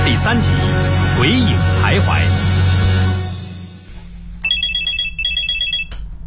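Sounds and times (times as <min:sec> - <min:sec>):
speech: 0:00.2 - 0:02.3
telephone ringing in electronic trilling bursts: 0:04.5 - 0:05.9.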